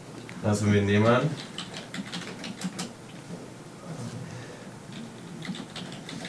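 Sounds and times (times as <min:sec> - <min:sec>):
speech: 0:00.4 - 0:01.6
typing on a computer keyboard: 0:01.4 - 0:02.9, 0:04.9 - 0:06.2.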